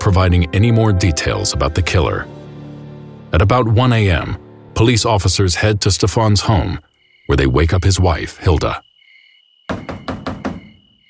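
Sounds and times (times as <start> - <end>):
speech: 0.0 - 2.4, 3.3 - 8.9
loud heavy knocking on a door: 9.7 - 10.8.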